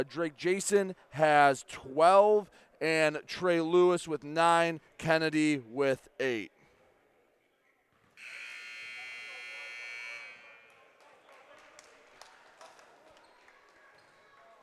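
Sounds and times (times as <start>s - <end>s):
speech: 0.0s - 6.6s
basketball game crowd noise: 0.0s - 14.6s
basketball game buzzer blaring: 8.2s - 10.7s.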